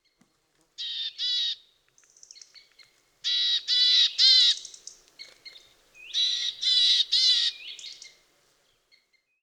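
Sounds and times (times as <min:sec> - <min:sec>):
willow tit Poecile montanus calling: 0:00.8 - 0:08.2.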